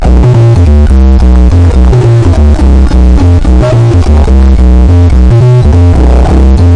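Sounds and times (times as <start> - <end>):
142 electro bot bass loop: 0.0 - 6.7.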